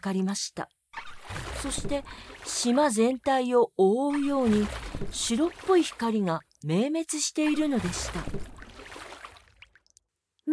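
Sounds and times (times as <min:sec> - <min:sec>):
speech: 0:00.0 - 0:00.8, 0:01.6 - 0:08.6
water dripping: 0:01.0 - 0:03.1, 0:04.1 - 0:06.8, 0:07.4 - 0:10.5
oars pulling a boat through the sea: 0:01.0 - 0:03.2, 0:04.1 - 0:06.5, 0:07.5 - 0:10.0.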